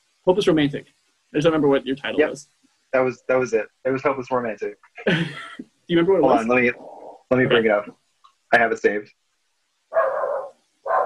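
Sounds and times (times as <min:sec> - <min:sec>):
speech: 0:00.2 - 0:09.2
dog barking: 0:09.9 - 0:11.0.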